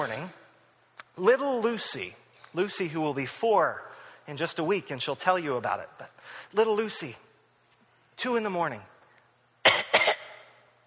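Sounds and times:
speech: 1.2 - 7.3, 8.2 - 8.9
person imitating a young girl's hacking cough: 9.6 - 10.5.

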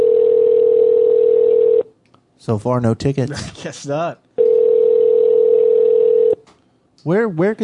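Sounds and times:
telephone ring tone over a phone line: 0.0 - 1.9, 4.4 - 6.4
speech: 2.4 - 4.2, 7.0 - 7.6.

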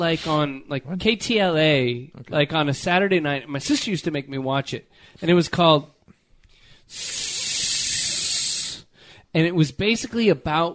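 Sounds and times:
speech: 0.0 - 5.9, 6.9 - 7.3, 9.3 - 10.7
person imitating a snake's hiss: 6.9 - 8.9.

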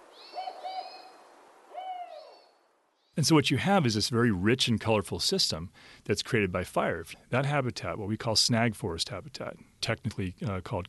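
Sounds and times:
spotted owl hooting: 0.1 - 2.5
speech: 3.2 - 10.8.

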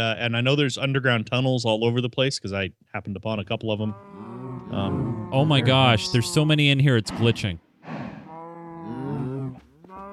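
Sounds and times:
speech: 0.0 - 7.6
many video game cows mooing in a crowded chorus: 3.9 - 6.6, 8.2 - 10.1.

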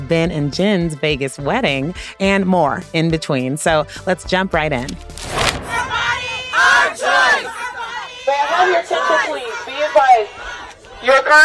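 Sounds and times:
speech: 0.1 - 5.1, 11.0 - 11.4
abortion rights protest crowd chanting outside a courthouse: 5.4 - 11.4.

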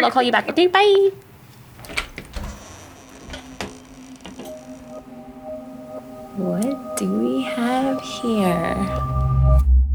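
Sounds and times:
speech: 0.0 - 2.0, 6.4 - 9.2
soft steady hum: 0.0 - 9.5
door unlocking and opening: 1.8 - 4.8.

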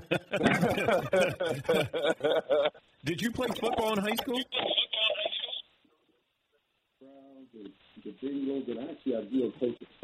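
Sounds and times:
laughter: 0.0 - 2.9
speech: 0.1 - 4.7, 8.2 - 10.0
voice on a thin band-limited phone line: 3.5 - 5.6.

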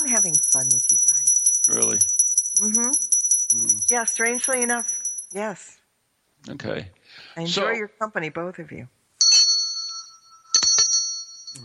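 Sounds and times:
small bell ringing: 0.0 - 5.5, 9.2 - 11.6
speech: 3.9 - 5.8, 6.4 - 9.0.

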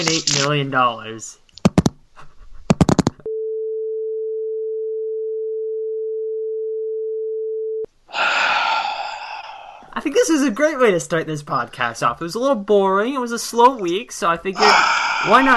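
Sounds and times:
speech: 0.0 - 1.4, 10.0 - 15.5
phone hang-up busy signal tone: 3.3 - 7.9
breathy rush of noise: 8.1 - 10.0, 14.6 - 15.5.

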